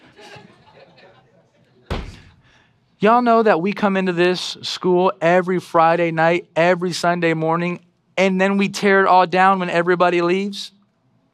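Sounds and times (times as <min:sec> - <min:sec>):
laughter: 0:00.0 - 0:01.9
chair set down hard on a stage at a school used for church services: 0:01.9 - 0:02.4
speech: 0:03.0 - 0:10.8.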